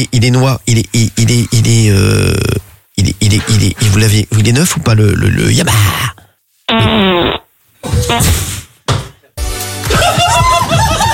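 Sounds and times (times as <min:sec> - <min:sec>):
speech: 0:00.0 - 0:07.4, 0:08.0 - 0:08.5
fart: 0:06.7 - 0:08.7
laughter: 0:09.8 - 0:11.1.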